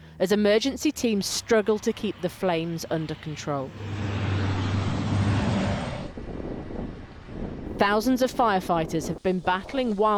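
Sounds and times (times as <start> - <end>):
highway traffic: 0.0 - 7.8
wind: 0.0 - 10.1
speech: 0.2 - 4.2, 7.8 - 10.1.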